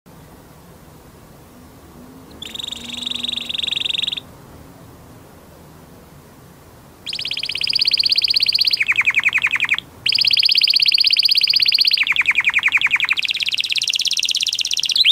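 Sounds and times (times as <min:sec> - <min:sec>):
quiet hiss: 0:00.1 - 0:14.9
canary singing high buzzy trills and rattling roll: 0:01.7 - 0:04.3, 0:07.0 - 0:15.1.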